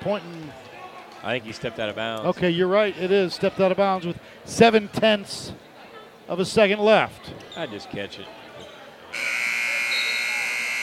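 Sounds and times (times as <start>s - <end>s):
speech: 0.0s - 5.7s, 6.3s - 8.4s
end-of-game buzzer at a basketball game: 9.2s - 10.8s.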